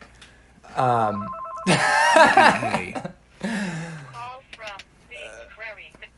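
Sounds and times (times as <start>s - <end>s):
phone ringtone with a steady electronic tone: 1.1s - 2.1s.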